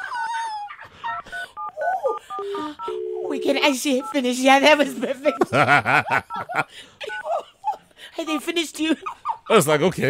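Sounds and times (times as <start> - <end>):
steady ringing electronic telephone tones: 1.3 - 5.6
speech: 3.4 - 7.2, 8.2 - 10.0
laughter: 4.7 - 10.0.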